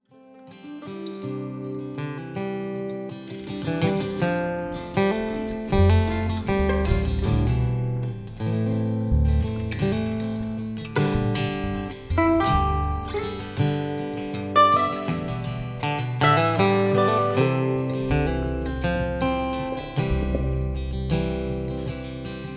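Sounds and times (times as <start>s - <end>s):
mandolin warmup: 0.6s - 22.5s.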